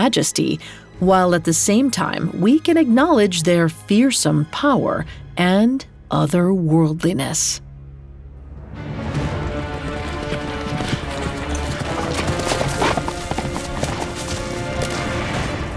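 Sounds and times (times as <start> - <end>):
speech: 0.0 - 7.6
horse-bodied centaur hooves galloping at full speed: 8.9 - 15.7.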